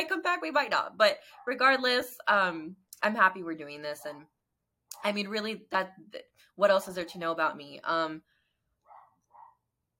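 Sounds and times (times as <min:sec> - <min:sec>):
speech: 0:00.0 - 0:04.4, 0:05.0 - 0:08.3
dog barking: 0:08.8 - 0:09.6.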